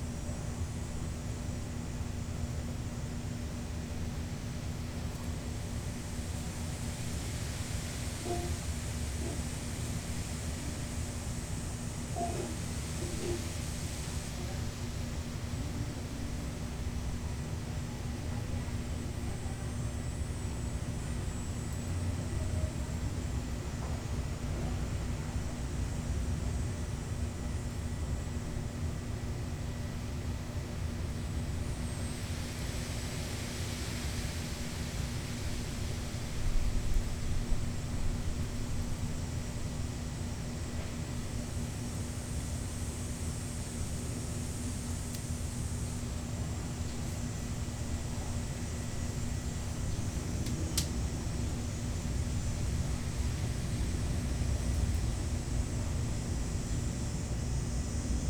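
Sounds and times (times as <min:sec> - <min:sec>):
cicadas in Toronto: 0:00.0 - 0:58.2.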